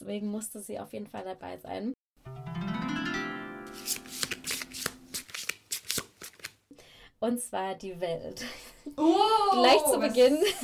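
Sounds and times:
speech: 0.1 - 2.6, 7.2 - 10.6
tarot cards flicking and slapping as a card is turned over: 3.7 - 6.6
laughter: 9.6 - 10.6.

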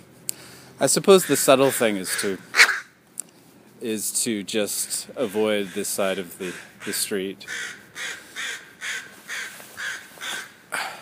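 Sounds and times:
speech: 0.8 - 2.6, 3.8 - 8.2
crow cawing harshly: 1.1 - 2.9, 5.2 - 10.9.

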